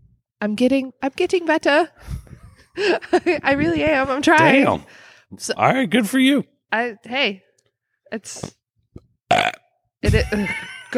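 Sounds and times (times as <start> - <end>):
speech: 0.4 - 2.2, 2.8 - 7.4, 8.1 - 8.6, 10.0 - 10.8
person burping: 9.3 - 9.8.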